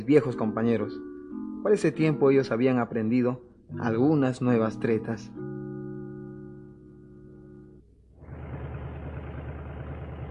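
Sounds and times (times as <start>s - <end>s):
speech: 0.0s - 5.5s
car engine idling and revving: 8.2s - 10.2s.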